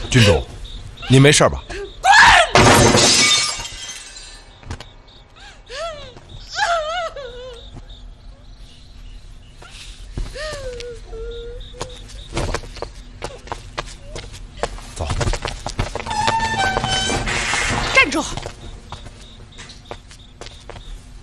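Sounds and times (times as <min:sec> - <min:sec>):
thin high chirping: 0:00.0 - 0:02.0, 0:03.2 - 0:14.2, 0:16.0 - 0:21.2
speech: 0:00.1 - 0:00.5, 0:01.1 - 0:01.8, 0:02.8 - 0:03.4
glass shattering: 0:02.5 - 0:04.6.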